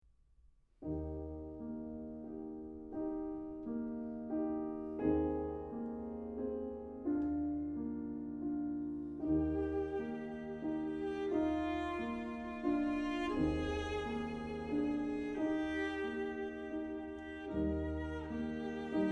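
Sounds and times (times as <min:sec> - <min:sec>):
piano trio playing in B flat: 0:00.9 - 0:19.1.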